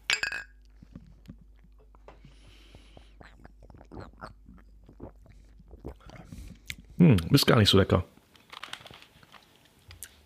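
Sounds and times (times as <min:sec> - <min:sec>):
two glasses clinking in a toast: 0:00.0 - 0:00.6
quiet sipping and soft mouth noises: 0:00.6 - 0:07.4
speech: 0:07.0 - 0:08.1.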